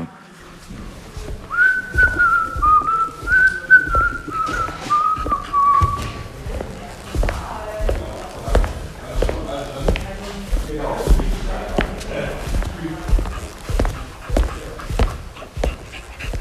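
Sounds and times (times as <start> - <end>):
regular thumping steps or taps: 0.5 - 16.3
person whistling a slow wavering melody: 1.5 - 6.1.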